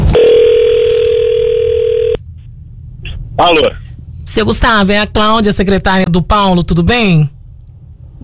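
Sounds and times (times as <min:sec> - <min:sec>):
outgoing phone call ring tone: 0:00.2 - 0:02.2
speech: 0:03.4 - 0:07.4.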